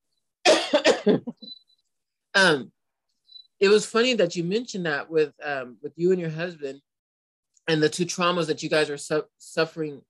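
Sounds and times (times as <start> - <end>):
harsh coughing from a tickle in the throat: 0.4 - 1.5
speech: 0.8 - 1.5, 2.4 - 2.8, 3.6 - 6.9, 7.7 - 10.0.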